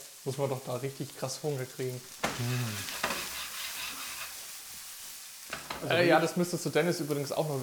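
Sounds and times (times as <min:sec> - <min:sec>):
onions and garlic frying in a pan: 0:00.0 - 0:07.6
speech: 0:00.2 - 0:03.0, 0:05.8 - 0:07.6
pan scraping as the pan is tossed: 0:02.2 - 0:04.5.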